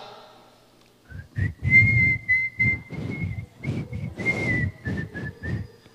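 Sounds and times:
breathy low rumble: 1.1 - 5.8
person whistling a tune in praise of God: 1.1 - 5.9.

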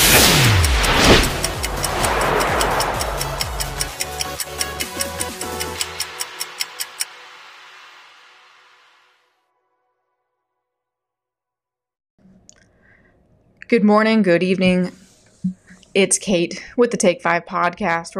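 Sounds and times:
engine-like whoosh: 0.0 - 4.4
crisp clock ticking: 0.0 - 7.2
speech: 13.7 - 18.1.

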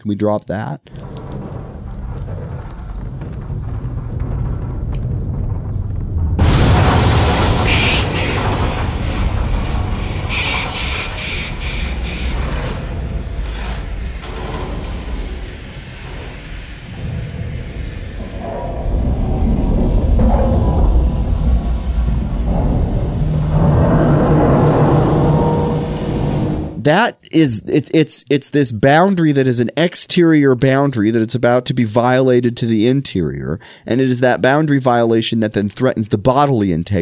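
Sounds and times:
speech: 0.0 - 1.0, 26.8 - 37.0
building structure groaning under water pressure: 0.9 - 26.8.

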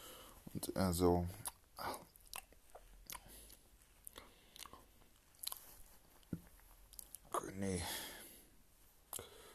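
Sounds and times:
speech: 0.6 - 2.0
chewing and biting a döner kebab: 1.4 - 6.3.

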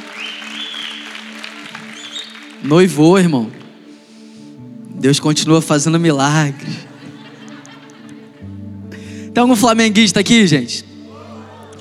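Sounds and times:
faint high whistle: 0.0 - 2.7
congregation clapping: 0.0 - 4.0, 7.0 - 8.4, 11.1 - 11.8
low sustained instrumental drone: 1.2 - 11.8
speech: 2.6 - 3.6, 5.0 - 6.9, 9.4 - 10.9
laughter: 6.4 - 9.6, 11.0 - 11.8.

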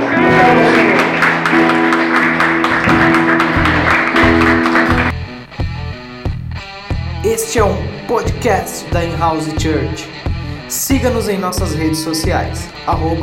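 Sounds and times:
church audience applauding: 0.0 - 5.2
live music with a pulsing beat: 0.0 - 13.2
speech: 7.6 - 13.2.

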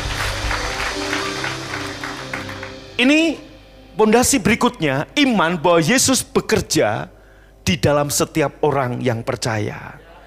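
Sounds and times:
church audience clapping: 0.0 - 3.0
low sustained musical tone: 0.0 - 7.9
speech: 3.0 - 10.0.

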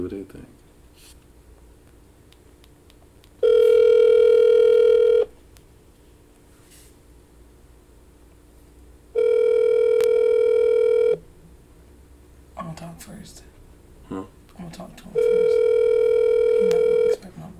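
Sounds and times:
speech: 0.0 - 1.2
phone line ringing on the caller's end: 3.4 - 5.4, 9.1 - 11.3, 15.1 - 17.2.

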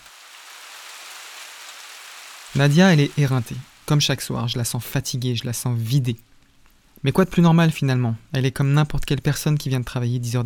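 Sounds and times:
steady rain falling: 0.0 - 5.0
speech: 2.6 - 6.3, 7.0 - 10.4.

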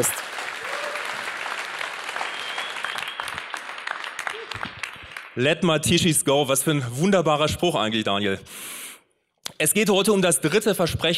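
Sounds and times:
speech: 0.0 - 0.3, 5.4 - 8.8, 9.6 - 11.1
audience applauding: 0.0 - 5.4.

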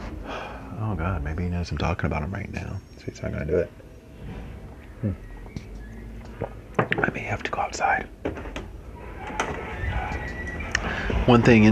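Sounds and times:
steady low noise: 0.0 - 11.7
speech: 1.0 - 5.3, 6.4 - 8.6, 11.2 - 11.7
door opened with a scraping rumbling slide: 4.2 - 4.7, 8.4 - 11.7.

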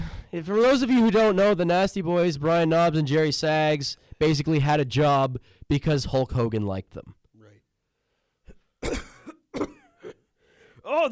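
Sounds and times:
speech: 0.3 - 7.2, 8.8 - 9.7, 10.9 - 11.1
person clearing throat: 8.5 - 10.3
person coughing: 8.5 - 10.3.

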